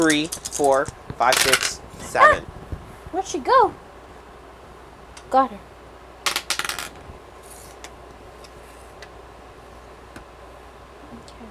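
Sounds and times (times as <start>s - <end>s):
dice clattering across a hard table: 0.0s - 1.8s, 6.3s - 7.0s
speech: 0.0s - 2.5s, 3.1s - 3.8s, 5.3s - 5.7s.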